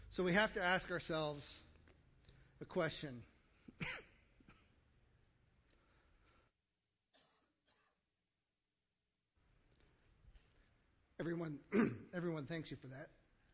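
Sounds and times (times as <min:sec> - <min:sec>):
speech: 0:00.2 - 0:01.6, 0:02.6 - 0:04.1, 0:11.2 - 0:13.2
person coughing: 0:03.7 - 0:04.8, 0:11.7 - 0:12.1.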